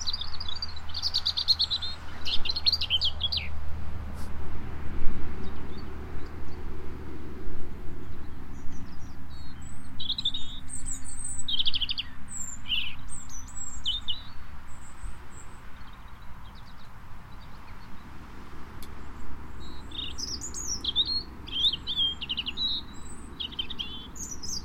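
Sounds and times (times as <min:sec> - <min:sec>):
European robin Erithacus rubecula singing: 0:00.0 - 0:03.6, 0:08.0 - 0:18.2, 0:18.8 - 0:24.6
passing vehicle: 0:00.0 - 0:24.6
steady low rumble of traffic: 0:00.0 - 0:24.6.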